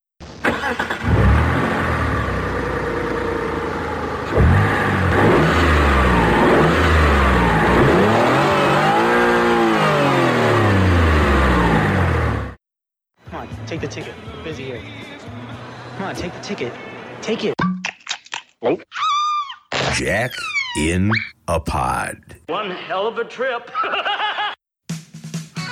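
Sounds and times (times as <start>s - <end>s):
car revving and driving off: 0.5s - 12.6s
speech: 0.7s - 1.0s, 13.7s - 15.0s, 16.0s - 17.6s, 18.6s - 19.1s, 19.9s - 25.0s
laughter: 23.7s - 24.6s.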